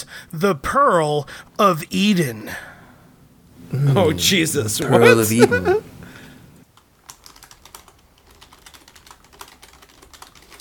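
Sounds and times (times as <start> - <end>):
speech: 0.0 - 2.7, 3.7 - 5.9
laughter: 3.7 - 5.9
typing on a computer keyboard: 6.8 - 10.6.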